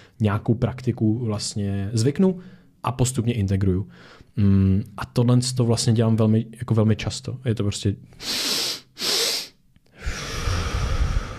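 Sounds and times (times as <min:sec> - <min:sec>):
speech: 0:00.2 - 0:09.1
long steady exhale in a breathing exercise: 0:08.2 - 0:11.3
two inhales through the nose in a breathing exercise: 0:08.2 - 0:11.3.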